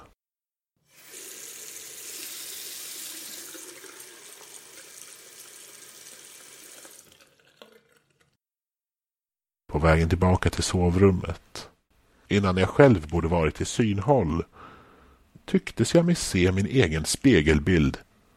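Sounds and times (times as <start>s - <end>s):
faucet gushing into a sink: 0.8s - 8.4s
speech: 9.8s - 11.7s, 12.3s - 14.6s, 15.5s - 18.0s.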